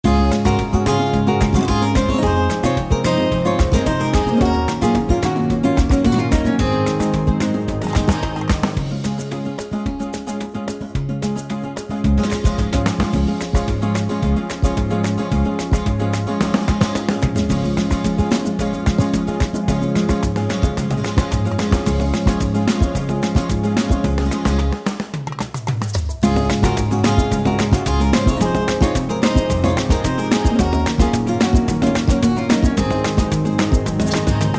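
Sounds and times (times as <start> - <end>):
Spanish rumba music: 0.0 - 34.5.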